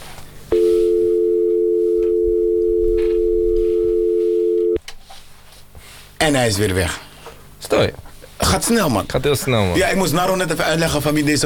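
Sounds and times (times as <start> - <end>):
telephone ringing with a steady electronic tone: 0.5 - 4.8
speech: 6.2 - 11.4.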